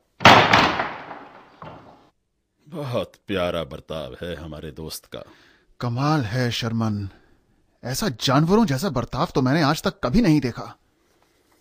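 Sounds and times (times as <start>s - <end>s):
door slamming hard: 0.0s - 2.0s
speech: 2.7s - 7.2s, 7.8s - 10.8s.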